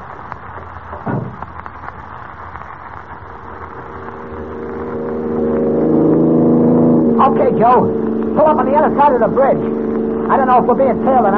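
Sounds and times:
big black sedan engine running in front of a prison: 0.0s - 11.3s
speech: 7.3s - 11.3s.

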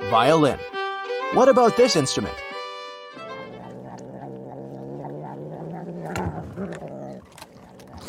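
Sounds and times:
speech: 0.1s - 0.7s, 1.3s - 2.4s
cat purring: 3.2s - 8.0s.

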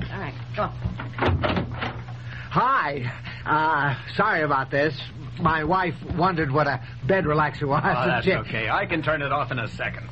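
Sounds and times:
steady low hum: 0.0s - 10.1s
speech: 0.6s - 1.0s, 2.6s - 10.1s
door bumping shut: 0.9s - 2.0s.

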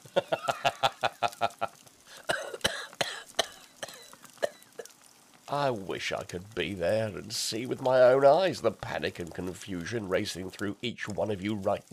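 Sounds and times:
person laughing: 0.0s - 1.8s
harsh irregular coughs: 2.3s - 4.8s
speech: 5.7s - 11.9s.

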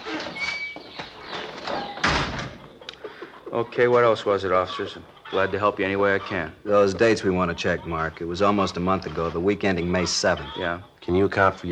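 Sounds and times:
sticking door forced shut with a heavy slam: 0.1s - 2.7s
door knocks and rattles: 1.6s - 2.6s
speech: 3.5s - 11.7s.

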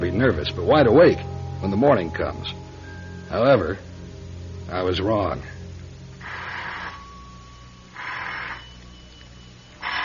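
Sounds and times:
low steady hum: 0.0s - 10.0s
speech: 0.1s - 2.6s, 3.3s - 3.9s, 4.7s - 5.6s
telephone ringing: 7.8s - 10.0s.

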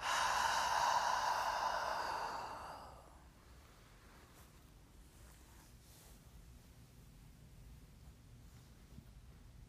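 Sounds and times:
long slow exhale during a guided breathing exercise: 0.0s - 3.3s.

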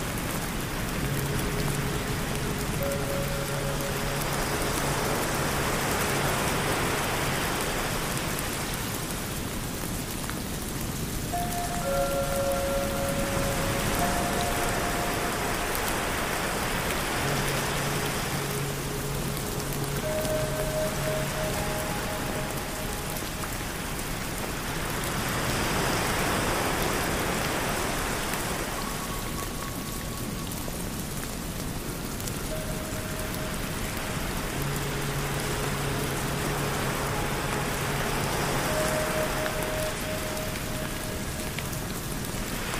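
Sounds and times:
ocean waves in Hawaii: 0.0s - 42.7s
steady rain hissing: 0.0s - 42.7s
Tibetan singing bowl tones: 1.0s - 7.0s, 11.3s - 23.8s, 32.4s - 41.9s.

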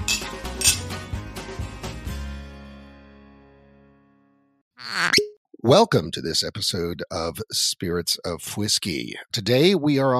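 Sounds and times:
glasses clinking in a cheers toast: 0.0s - 0.9s
speech: 5.6s - 10.1s.

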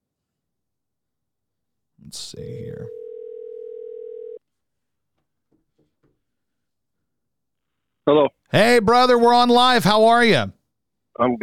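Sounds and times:
speech: 2.0s - 3.0s, 8.1s - 10.6s, 11.2s - 11.4s
steady telephone dial tone: 3.0s - 4.4s.

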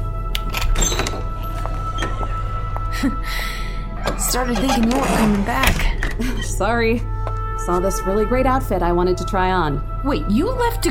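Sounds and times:
door opening: 0.4s - 2.9s, 3.9s - 6.8s
speech: 3.0s - 3.6s, 4.3s - 7.1s, 7.7s - 10.8s.

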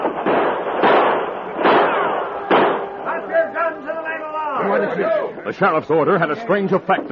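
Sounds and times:
gunshots as men charge up a ship's gangplank: 0.0s - 3.5s
speech: 5.0s - 7.1s.

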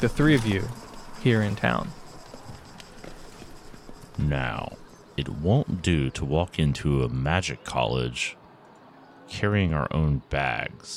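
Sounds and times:
speech: 0.0s - 2.0s, 4.2s - 8.4s, 9.3s - 10.9s
horse hooves clip-clopping while trotting: 0.0s - 5.4s
horse-drawn carriage rolling rumble: 0.0s - 5.8s.

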